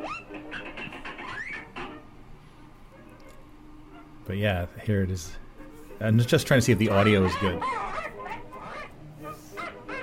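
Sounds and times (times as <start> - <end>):
cartoon parrot squawking as it is attacked: 0.0 - 1.6, 6.8 - 10.0
busy low noise: 0.0 - 10.0
speech: 4.3 - 5.4, 6.0 - 7.9.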